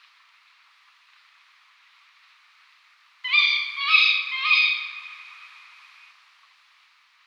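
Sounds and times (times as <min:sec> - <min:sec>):
female tawny owl calling: 0:03.3 - 0:05.6.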